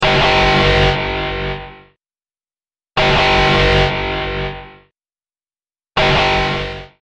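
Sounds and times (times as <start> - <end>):
attack alarm: 0.0 - 2.0, 3.0 - 4.9, 6.0 - 7.0.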